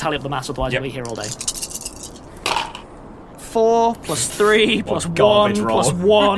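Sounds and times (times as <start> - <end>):
speech: 0.0 - 1.7, 3.6 - 6.3
dice tumbling across a hard tabletop: 1.1 - 2.9.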